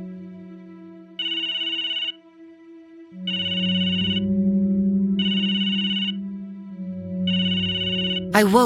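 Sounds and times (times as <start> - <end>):
mobile phone melodic ringtone: 1.2 - 2.2, 3.3 - 4.3, 5.2 - 6.2, 7.3 - 8.4
speech: 8.3 - 8.6.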